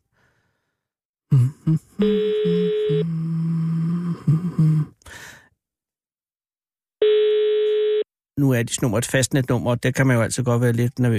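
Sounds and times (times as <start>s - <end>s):
breathy vocal sounds: 0.0s - 5.6s
speech: 1.3s - 2.6s, 8.6s - 11.1s
phone line ringback tone on outgoing call: 2.0s - 3.1s, 7.0s - 8.1s.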